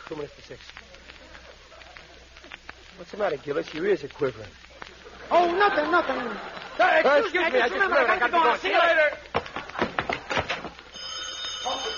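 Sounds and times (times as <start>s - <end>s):
speech: 0.1s - 1.0s, 3.0s - 4.6s, 5.3s - 9.2s
laughter: 0.9s - 3.5s, 4.7s - 10.8s
telephone bell ringing with a rattling trill: 10.9s - 11.9s.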